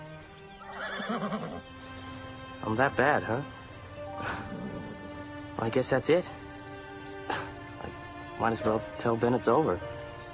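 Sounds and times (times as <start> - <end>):
horse whinnying while rearing: 0.6 - 1.6, 4.4 - 5.2
speech: 1.1 - 2.0, 2.6 - 3.6, 5.6 - 6.4, 7.3 - 10.0.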